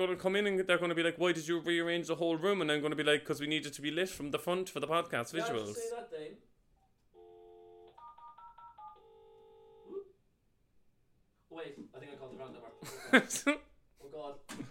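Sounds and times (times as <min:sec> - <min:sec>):
speech: 0:00.0 - 0:06.5, 0:11.6 - 0:14.7
cordless phone keypad dual-tone beeps as a number is dialed: 0:07.2 - 0:09.2
people laughing: 0:12.8 - 0:13.7.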